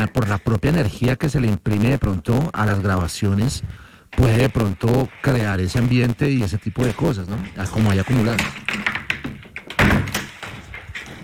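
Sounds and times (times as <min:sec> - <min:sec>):
door rattling and bumping: 0:00.0 - 0:01.1, 0:04.1 - 0:11.2
speech: 0:00.0 - 0:08.9
door in an old building thudding open: 0:08.0 - 0:11.2.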